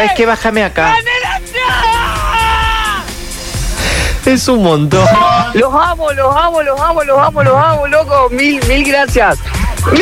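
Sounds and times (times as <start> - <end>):
speech: 0.0 - 1.1, 4.2 - 9.9
passenger screaming in high-pitched wails: 1.5 - 3.1
rumbling noise: 2.1 - 8.4.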